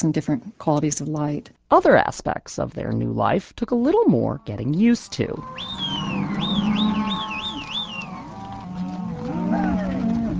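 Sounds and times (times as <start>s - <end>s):
speech: 0.0s - 6.0s
cattle lowing and mooing during a cattle drive: 5.3s - 10.3s
high warbling whistle-like tone: 5.4s - 8.6s.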